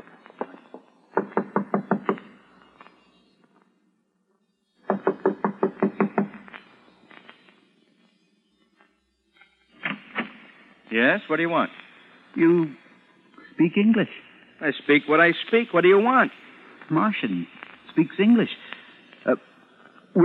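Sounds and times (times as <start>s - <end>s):
firm knocking on a door: 1.2s - 2.2s, 4.9s - 6.3s
speech: 11.0s - 11.8s, 12.4s - 12.8s, 13.6s - 18.6s, 19.2s - 19.5s.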